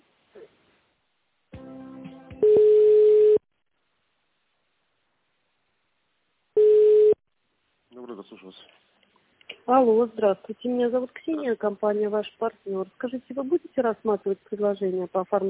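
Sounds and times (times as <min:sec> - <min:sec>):
telephone line tone during a call transfer: 0:02.4 - 0:03.4, 0:06.6 - 0:07.2
telephone line buzzing during a call transfer: 0:06.6 - 0:07.2
speech: 0:08.3 - 0:08.8, 0:09.7 - 0:15.4.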